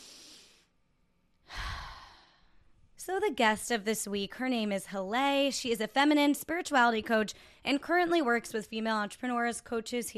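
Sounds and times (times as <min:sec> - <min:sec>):
deep breath in and out: 0:00.0 - 0:00.7, 0:01.4 - 0:02.8
speech: 0:03.1 - 0:10.1.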